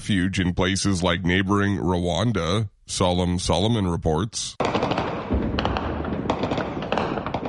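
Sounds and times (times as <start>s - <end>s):
speech: 0.0s - 4.8s
steady rumble of noise: 0.0s - 7.4s
gunshots echoing across a city during conflict: 4.6s - 7.4s.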